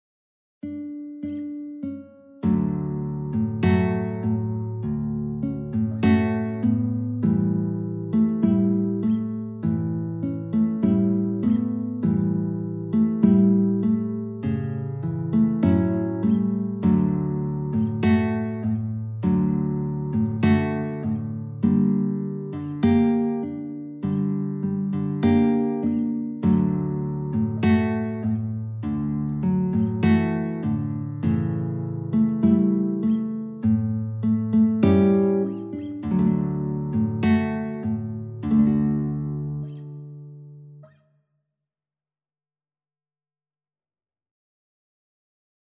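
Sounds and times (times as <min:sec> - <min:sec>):
guitar duet with two guitars: 0:00.6 - 0:41.1.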